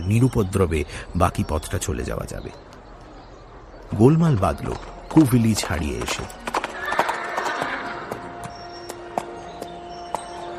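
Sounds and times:
speech: 0.1 - 2.7, 3.9 - 6.5
galloping horses' clopping hoofbeats: 4.7 - 10.5
horse neighing: 6.7 - 8.2.

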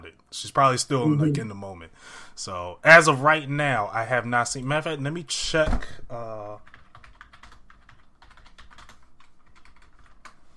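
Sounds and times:
speech: 0.1 - 6.8
rapid clacky typing on a loud massive new computer keyboard: 6.6 - 10.4.

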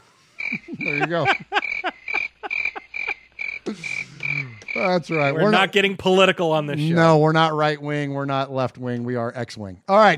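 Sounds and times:
crickets chirping sound effect: 0.3 - 5.7
laughter: 0.4 - 7.2
speech: 0.9 - 1.6, 4.8 - 10.1.

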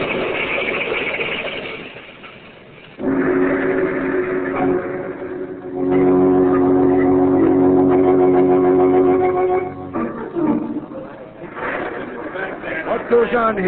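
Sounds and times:
car screeching whine on a highway: 0.0 - 11.6
car engine roaring on a highway: 2.9 - 12.3
laughter: 10.9 - 13.6
speech: 13.3 - 13.6.

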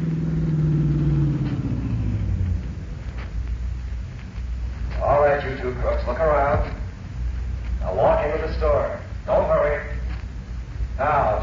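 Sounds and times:
car engine rumbling as car slows, arrives and idles: 0.0 - 11.4.

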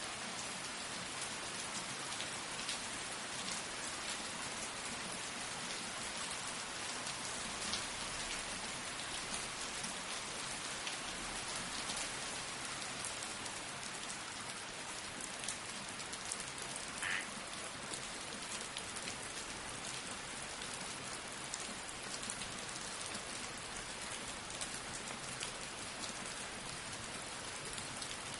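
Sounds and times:
steady rain pattering on a surface: 0.1 - 28.3.

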